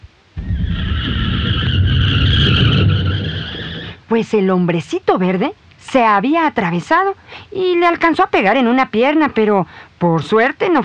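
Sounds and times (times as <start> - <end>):
low rumble: 0.0 - 4.1
car tires skidding under hard braking: 0.4 - 4.0
speech: 4.1 - 10.8.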